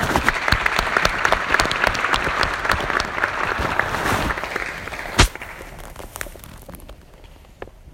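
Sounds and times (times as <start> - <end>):
audience applause welcoming a keynote speaker at a Rotary International district event: 0.0 - 5.6
single sharp louder clap: 0.0 - 5.8.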